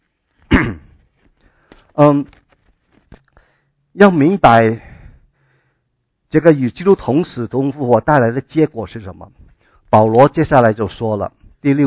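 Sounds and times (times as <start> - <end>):
person giving a Bible teaching coughing: 0.5 - 1.0
speech: 2.0 - 2.4, 4.0 - 4.9, 6.3 - 11.8.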